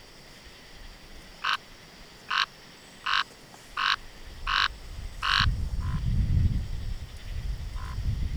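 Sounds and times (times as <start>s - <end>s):
Scinax x signatus calling: 0.9s - 8.3s.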